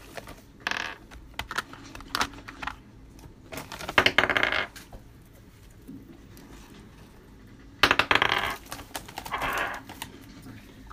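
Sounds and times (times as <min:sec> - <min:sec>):
small metal dice rolled across a table: 0:00.6 - 0:02.2, 0:03.9 - 0:04.8, 0:07.8 - 0:08.7, 0:09.3 - 0:09.8.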